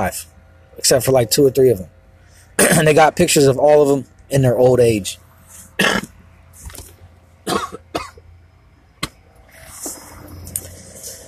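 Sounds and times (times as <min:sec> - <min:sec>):
speech: 0:00.0 - 0:02.0, 0:02.6 - 0:05.2, 0:05.8 - 0:06.1
person harshly clearing throat and coughing to bring up mucus: 0:02.6 - 0:02.9, 0:05.8 - 0:06.2, 0:07.4 - 0:08.2.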